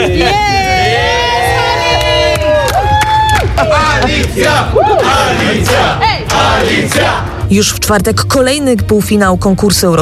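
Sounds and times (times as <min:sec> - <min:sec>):
journalists cheering in a press centre: 0:00.1 - 0:07.3
journalists' excited shouts and whoops: 0:00.2 - 0:03.8, 0:04.7 - 0:05.2
journalists' scattered clapping in a press centre: 0:02.0 - 0:07.2
speech: 0:06.9 - 0:09.9.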